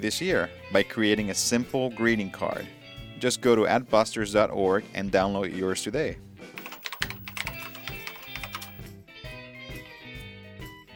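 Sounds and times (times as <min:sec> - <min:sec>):
speech: 0:00.0 - 0:06.6
soft repeating musical bed: 0:06.6 - 0:08.9
typing on a computer keyboard: 0:06.6 - 0:08.9.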